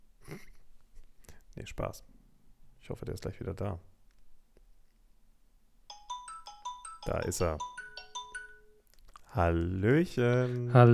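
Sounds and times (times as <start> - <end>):
speech: 1.6 - 2.2, 2.9 - 3.9, 7.1 - 7.7, 9.3 - 10.9
phone ringtone of incoming call with bright electronic melody: 5.9 - 8.9.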